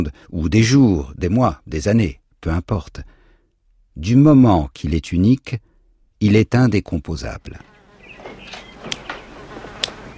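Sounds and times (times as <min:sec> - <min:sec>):
speech: 0:00.0 - 0:03.2, 0:04.0 - 0:07.7
fly buzzing: 0:07.6 - 0:10.1.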